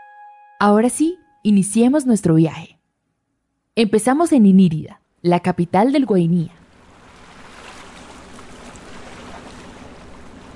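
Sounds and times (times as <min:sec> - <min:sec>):
speech: 0:00.6 - 0:02.8, 0:03.8 - 0:06.6
motor launch boat engine humming at river dock: 0:06.6 - 0:10.5
water splashing and rushing beside river dock: 0:06.6 - 0:10.5.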